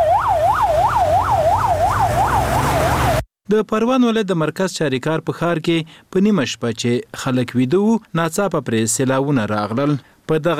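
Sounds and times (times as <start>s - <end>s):
ambulance siren wailing in Parwan province after deadly floods: 0.0s - 3.2s
speech: 3.5s - 10.5s.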